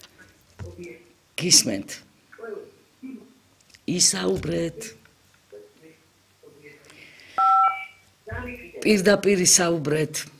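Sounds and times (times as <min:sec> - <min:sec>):
speech: 0:00.8 - 0:02.1, 0:03.9 - 0:05.0, 0:08.8 - 0:10.3
steady two-tone dialing beep on a telephone line: 0:07.4 - 0:08.0.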